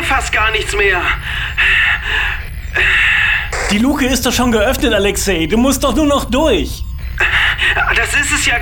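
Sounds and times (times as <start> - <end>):
speech: 0.1 - 1.4, 3.7 - 8.6
heavy rapid breathing inside a spacesuit helmet: 1.2 - 3.6, 7.2 - 7.9.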